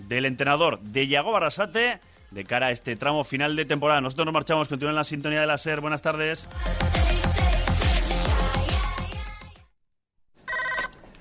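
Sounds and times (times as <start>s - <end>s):
speech: 0.1s - 7.2s
music with a thumping beat: 6.5s - 9.7s
telephone bell ringing: 10.5s - 10.9s.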